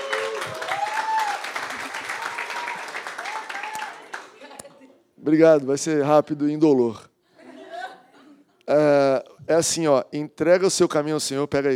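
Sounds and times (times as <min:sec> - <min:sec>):
crowd applauding steadily: 0:00.0 - 0:04.5
speech: 0:05.2 - 0:07.1, 0:08.7 - 0:11.7.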